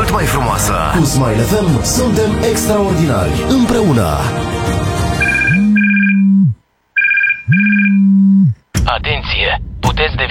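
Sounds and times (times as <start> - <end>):
speech: 0.1 - 5.0, 8.9 - 10.2
steady low hum: 5.2 - 6.6, 7.3 - 8.6
telephone ringing with warbling electronic tones: 5.2 - 8.3.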